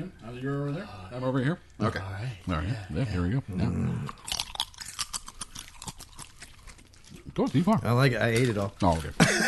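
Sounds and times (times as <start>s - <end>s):
speech: 0.0s - 4.3s, 7.4s - 9.4s
crunchy chewing of a salty snack: 4.0s - 9.4s.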